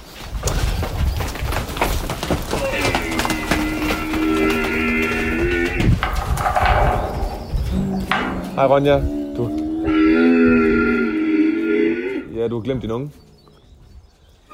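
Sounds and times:
horses running through an opened gate with hooves clattering: 0:00.0 - 0:14.2
speech: 0:08.6 - 0:09.6, 0:12.6 - 0:13.3.

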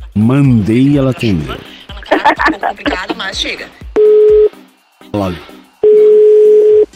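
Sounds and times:
laughter: 0:00.0 - 0:03.7
speech: 0:00.2 - 0:03.8, 0:05.2 - 0:05.6
telephone busy signal: 0:04.0 - 0:04.5, 0:05.8 - 0:06.9.

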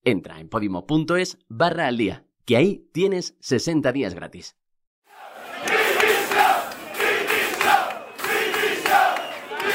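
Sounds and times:
speech: 0:00.0 - 0:04.6
protesting crowd chanting and shouting at a government office in Salamanca Spain: 0:05.1 - 0:09.7.

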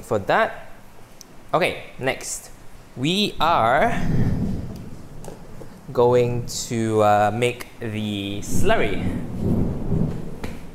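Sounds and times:
speech: 0:00.1 - 0:00.7, 0:01.5 - 0:04.3, 0:05.9 - 0:09.6
thunder rumbling: 0:03.2 - 0:07.3, 0:08.1 - 0:10.7
sharp thunder crack: 0:03.4 - 0:06.7, 0:08.2 - 0:10.7.

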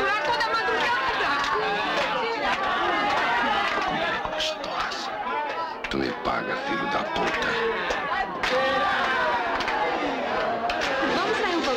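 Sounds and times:
dense crowd of people milling around and chattering: 0:00.0 - 0:11.7.

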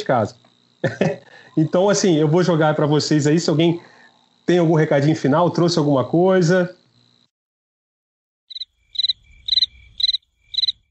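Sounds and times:
speech: 0:00.0 - 0:03.9, 0:04.5 - 0:06.8
cricket chirping: 0:00.0 - 0:07.3, 0:08.5 - 0:10.8
laughter: 0:00.8 - 0:01.8.

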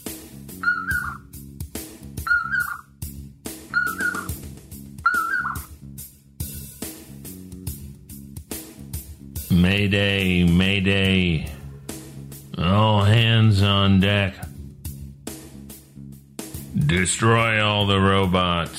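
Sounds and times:
common poorwill calling: 0:00.5 - 0:01.3, 0:02.2 - 0:02.9, 0:03.6 - 0:04.4, 0:05.0 - 0:05.8
speech: 0:09.6 - 0:11.5, 0:12.8 - 0:14.4, 0:16.9 - 0:18.7.

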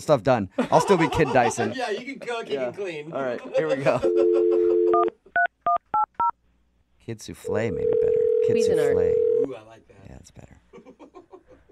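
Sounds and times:
speech: 0:00.0 - 0:05.8, 0:07.1 - 0:10.6
laughter: 0:00.6 - 0:02.7, 0:03.3 - 0:04.9
telephone dial tone: 0:07.8 - 0:09.5.

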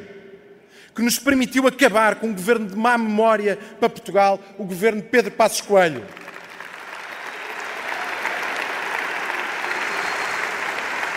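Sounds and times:
speech: 0:00.9 - 0:06.2
audience applauding an agreement among left-wing parties in Portugal: 0:06.1 - 0:11.1.

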